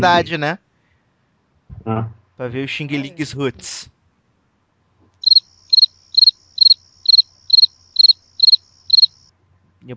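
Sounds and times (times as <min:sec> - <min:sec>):
speech: 0:00.0 - 0:00.6, 0:01.7 - 0:04.0
cricket chirping: 0:05.2 - 0:09.3.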